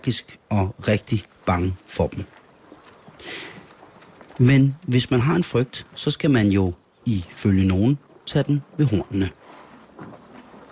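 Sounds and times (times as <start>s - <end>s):
speech: 0.0s - 2.4s, 4.4s - 9.4s
soft noisy outdoor background: 0.0s - 10.6s
horse hooves clip-clopping in a walking rhythm: 1.2s - 6.6s, 7.2s - 10.6s.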